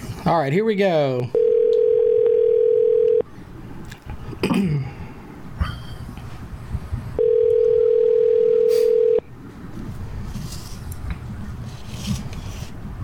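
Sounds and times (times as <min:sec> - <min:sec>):
speech: 0:00.3 - 0:01.4
phone line ringing: 0:01.3 - 0:03.2, 0:07.2 - 0:09.2
faint rustling and handling noises: 0:09.5 - 0:12.9.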